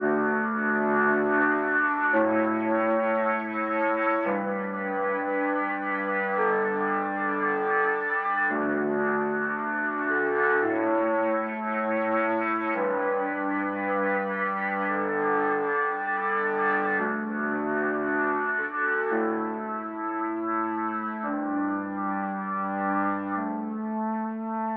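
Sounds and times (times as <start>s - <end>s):
synth pads: 0.0s - 24.7s.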